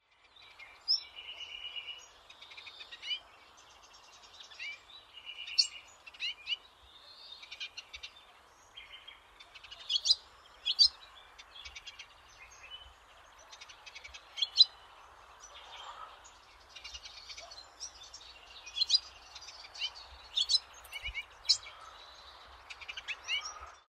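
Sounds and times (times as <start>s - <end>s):
melodious warbler: 0.1s - 23.8s.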